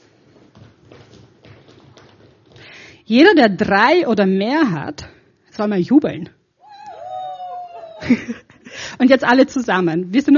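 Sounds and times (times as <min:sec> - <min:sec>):
group of people stamping their feet: 0:00.0 - 0:02.9
speech: 0:03.1 - 0:06.4, 0:08.1 - 0:10.3.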